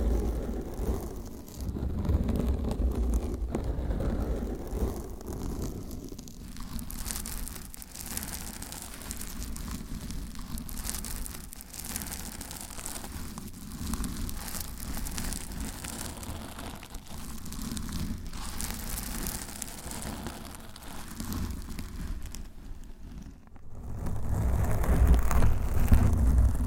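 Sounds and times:
scratching and rubbing on a microphone cover with nails: 0.0 - 26.6.

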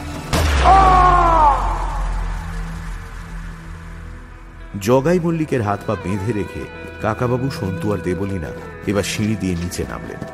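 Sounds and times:
low rumble after a gunshot: 0.2 - 5.6
gunshot fired into a pit: 0.3 - 3.2
speech: 4.8 - 10.3.

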